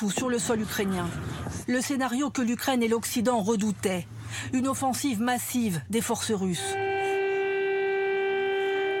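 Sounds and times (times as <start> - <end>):
speech: 0.0 - 6.8
emergency air raid siren wailing in Kyiv Ukraine during a Russian offensive: 6.6 - 8.9.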